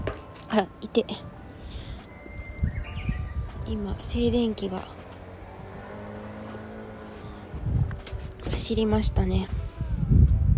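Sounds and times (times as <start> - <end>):
low outdoor rumbling: 0.0 - 10.5
Japanese bush warbler singing: 0.2 - 7.5
speech: 0.5 - 1.3, 3.7 - 5.0, 8.5 - 9.6.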